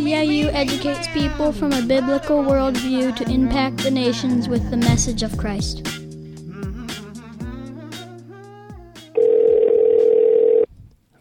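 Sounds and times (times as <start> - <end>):
speech: 0.1 - 6.0
outgoing call ringing tone on an iPhone: 9.2 - 10.7.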